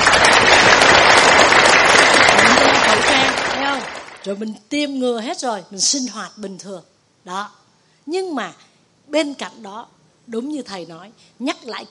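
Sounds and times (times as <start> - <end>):
crowd applauding: 0.0 - 4.3
speech: 4.2 - 11.8.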